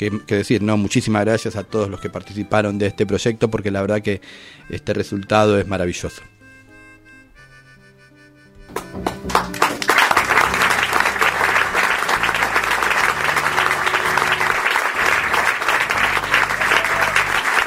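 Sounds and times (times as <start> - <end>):
speech: 0.0 - 6.3
audience applause at a school singing performance: 8.8 - 17.6.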